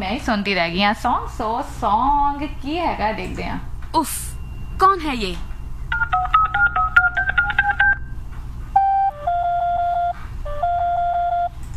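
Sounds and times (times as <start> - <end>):
low hum: 0.0 - 11.7
speech: 0.1 - 6.1
incoming phone call ringing with electronic telephone tones: 5.9 - 8.1, 8.8 - 11.6.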